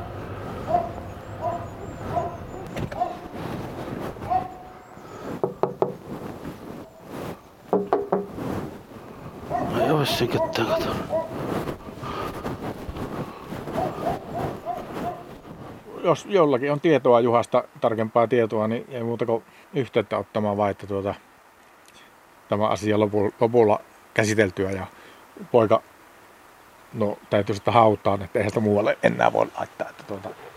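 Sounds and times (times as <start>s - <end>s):
caged dog barking at a home in Pudasjärvi: 0.6s - 3.3s, 4.2s - 4.8s, 9.5s - 11.4s, 13.8s - 15.3s
knocking and rattling: 5.4s - 6.1s, 7.7s - 8.4s
speech: 10.0s - 11.2s, 16.0s - 21.3s, 22.5s - 25.9s, 26.9s - 30.5s.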